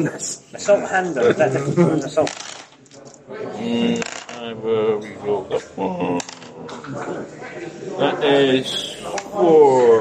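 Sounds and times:
speech: 0.0 - 2.5, 3.3 - 6.3, 6.9 - 9.9
dice tumbling and knocking across a hard tabletop: 2.2 - 3.1, 4.0 - 4.4, 6.2 - 6.5.

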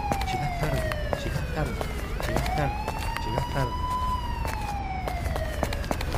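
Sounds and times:
police siren wailing on a busy street: 0.0 - 6.1.

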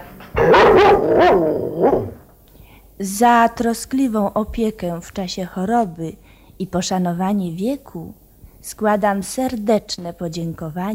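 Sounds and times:
pet dog barking indoors at home: 0.4 - 2.2
speech: 3.0 - 10.9.

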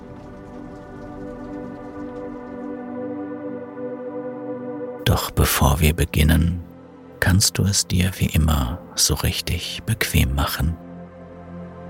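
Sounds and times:
rain falling: 0.0 - 2.9
speech: 5.2 - 6.6, 7.2 - 10.8.

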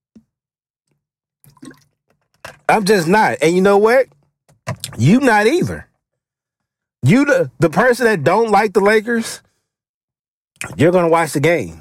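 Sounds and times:
water pouring into a glass: 1.5 - 1.9
speech: 2.7 - 4.2, 5.0 - 5.9, 7.0 - 9.4, 10.6 - 11.8.

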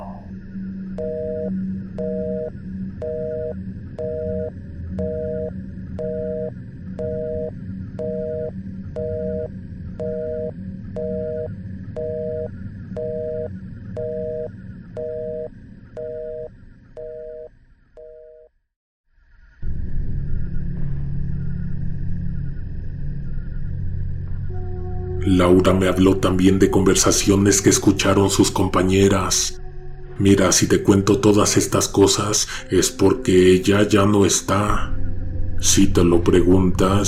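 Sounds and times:
low hum: 0.0 - 18.5, 19.3 - 37.0
telephone busy tone after a call disconnects: 1.0 - 18.5
speech: 25.4 - 29.6, 30.2 - 35.0, 35.6 - 37.0.

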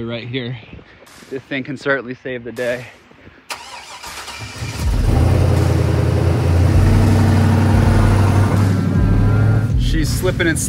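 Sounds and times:
speech: 0.0 - 3.0, 10.0 - 10.6
big monster truck engine cranking and revving: 3.5 - 9.8.

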